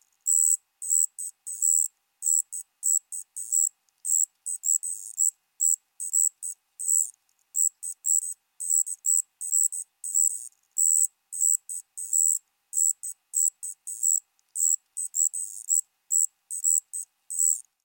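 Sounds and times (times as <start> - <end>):
Striped ground cricket Allonemobius fasciatus high-pitched buzzing trill: 0.3 - 17.7.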